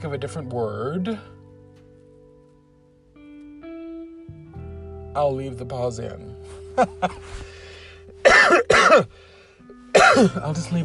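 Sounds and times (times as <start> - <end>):
speech: 0.0 - 1.4, 5.2 - 7.6, 8.5 - 9.3, 10.1 - 10.8
short sharp coughs: 8.2 - 9.2, 9.9 - 10.5
harsh throat-clearing rasps: 8.3 - 9.1, 10.0 - 10.4.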